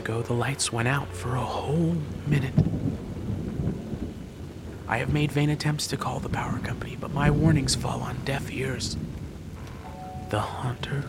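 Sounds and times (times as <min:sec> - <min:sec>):
speech: 0:00.0 - 0:03.0, 0:04.9 - 0:09.0, 0:10.3 - 0:11.0
deep continuous rumble of thunder: 0:00.0 - 0:11.0
steady rainfall: 0:00.0 - 0:11.0.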